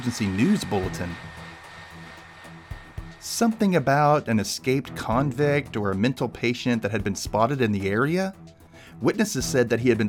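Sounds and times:
speech: 0.0s - 1.4s, 3.3s - 8.4s, 9.0s - 10.0s
hair dryer whooshing loudly: 0.0s - 5.3s.

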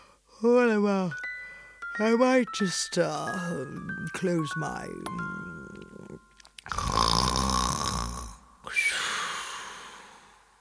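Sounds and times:
speech: 0.4s - 1.2s, 2.0s - 5.4s
man snoring loudly while asleep: 5.3s - 10.4s.

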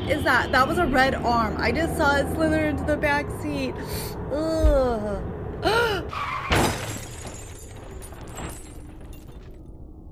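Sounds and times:
speech: 0.1s - 6.7s
short squeal: 6.1s - 6.7s
car crashing into the back end of another car: 6.1s - 9.7s
glass shattering in a car crash: 6.4s - 9.6s
debris settling after a car crash: 6.5s - 9.8s.

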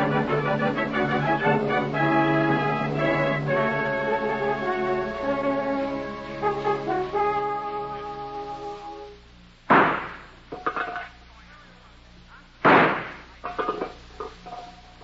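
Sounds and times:
low steady hum: 0.0s - 15.0s
gunshots: 9.7s - 10.4s, 12.6s - 13.4s.

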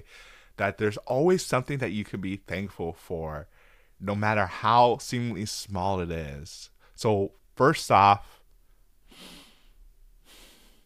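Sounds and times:
person taking a breath: 0.0s - 0.6s, 3.5s - 4.0s, 9.1s - 10.8s
faint steady hiss: 0.0s - 10.8s
speech: 0.1s - 8.4s.

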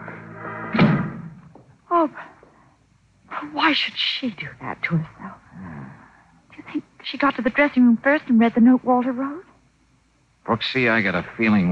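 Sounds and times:
steady tonal hum: 0.0s - 11.7s
door shutting with a solid thud: 0.7s - 1.4s
speech: 2.0s - 2.3s, 3.4s - 5.4s, 6.7s - 9.4s, 10.4s - 11.7s.

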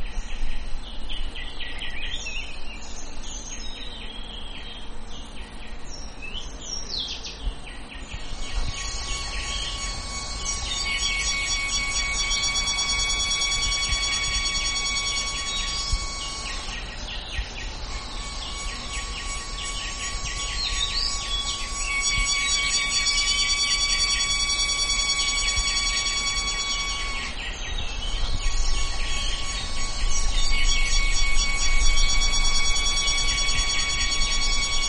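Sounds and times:
scattered bright bird-like chirps: 0.1s - 34.8s
cicadas shrilling outdoors: 8.1s - 34.8s.

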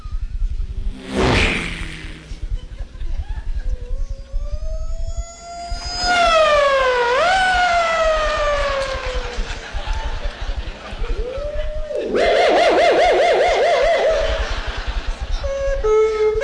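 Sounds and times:
fast car whooshing past: 0.9s - 2.5s
laughter: 2.5s - 3.9s, 8.4s - 12.9s, 13.5s - 16.4s
wailing siren: 3.7s - 9.7s, 11.1s - 16.4s.

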